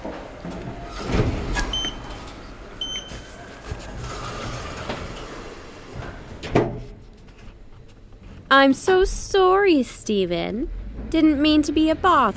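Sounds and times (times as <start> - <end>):
elevator sliding doors opening and closing: 0.0 - 7.1
speech: 0.4 - 1.4, 8.6 - 12.3.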